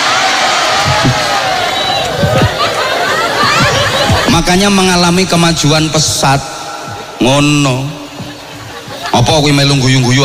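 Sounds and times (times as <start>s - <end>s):
audience in Kebumen clapping and cheering: 0.0s - 5.0s
scattered voices in the audience: 0.6s - 10.2s
laughter: 0.7s - 6.2s, 8.0s - 10.2s
speech: 4.5s - 6.6s, 7.2s - 8.0s, 9.1s - 10.2s.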